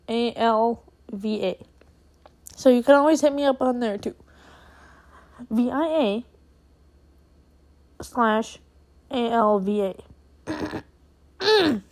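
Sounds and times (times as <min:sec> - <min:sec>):
speech: 0:00.4 - 0:01.7, 0:02.6 - 0:04.2, 0:05.4 - 0:06.3, 0:08.0 - 0:11.8
person clearing throat: 0:10.4 - 0:11.8.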